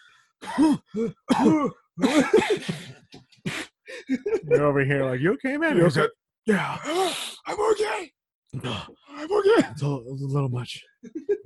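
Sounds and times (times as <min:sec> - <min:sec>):
man clearing throat: 0:00.4 - 0:02.9
man coughing in harsh raspy bursts: 0:00.4 - 0:04.5
speech: 0:00.6 - 0:11.4.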